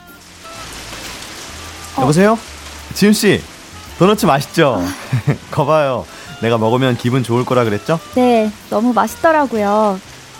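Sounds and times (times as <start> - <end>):
steady rain falling: 0.0 - 10.3
speech: 2.0 - 10.1
laughter: 4.8 - 5.7.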